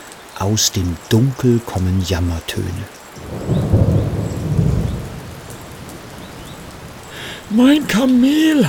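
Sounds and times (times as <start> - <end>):
steady rain pattering in a park at the edge of town: 0.0 - 8.6
speech: 0.4 - 3.6, 7.5 - 8.6
low distant thunder rumbling: 3.2 - 8.2.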